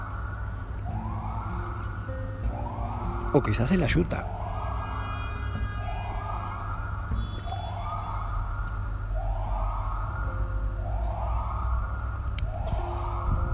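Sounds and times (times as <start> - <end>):
ambulance siren wailing in a rise-and-fall cycle: 0.0 - 13.5
low traffic rumble: 0.0 - 13.5
speech: 3.3 - 4.4.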